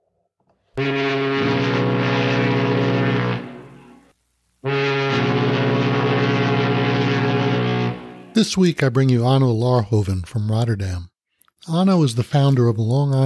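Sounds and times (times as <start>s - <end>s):
deep fog horn blasts: 0.8s - 8.4s
speech: 8.4s - 13.2s.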